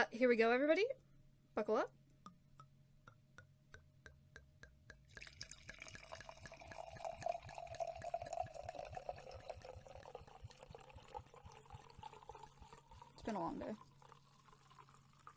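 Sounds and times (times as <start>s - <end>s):
speech: 0.0s - 2.0s, 13.3s - 13.8s
wine glugging into a glass: 4.9s - 15.3s.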